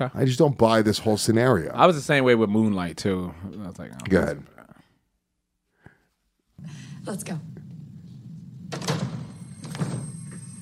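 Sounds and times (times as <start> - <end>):
speech: 0.0 - 4.6, 6.6 - 7.6
heavy door slams: 7.4 - 10.4.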